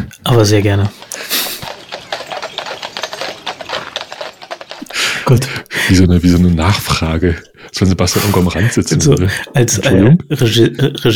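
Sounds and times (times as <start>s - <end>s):
speech: 0.3s - 1.0s, 5.3s - 11.1s
horse-drawn carriage hooves clip-clopping: 0.4s - 5.7s.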